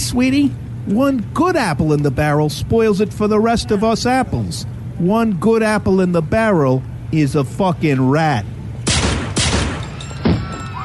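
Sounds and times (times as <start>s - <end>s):
speech: 0.1s - 8.6s
gunshots: 8.8s - 10.4s.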